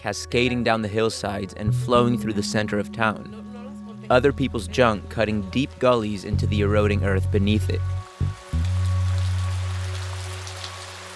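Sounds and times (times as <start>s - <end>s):
speech: 0.0s - 3.4s, 4.1s - 8.0s
deep sustained low hum: 1.6s - 8.4s
steady rain pattering: 7.8s - 11.1s.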